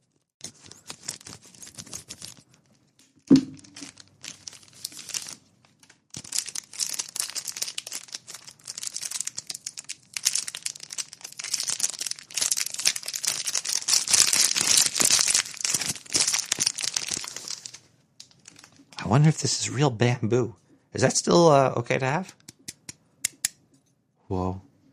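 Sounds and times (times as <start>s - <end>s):
packaging crinkling and tearing as a package is cut open with scissors: 0.0s - 19.0s
rustling and crumpling of packaging being unwrapped: 0.0s - 19.0s
sharp knock: 3.3s - 3.6s
speech: 19.1s - 22.4s, 24.3s - 24.6s.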